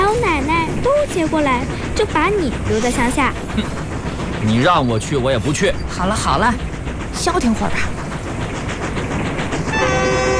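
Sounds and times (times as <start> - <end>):
train rumbling and rattling on rails toward a provincial city: 0.0 - 10.3
speech: 1.2 - 3.8, 4.4 - 8.0
sustained horn-like tone: 9.7 - 10.3.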